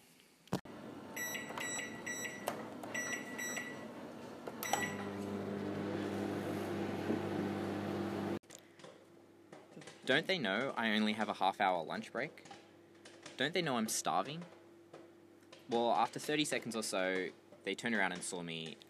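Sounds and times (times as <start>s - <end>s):
microwave oven making popcorn humming: 0.7s - 8.4s
microwave oven keypad beeps: 1.2s - 3.9s, 4.6s - 5.1s
speech: 10.1s - 12.5s, 13.4s - 14.6s, 15.7s - 18.8s.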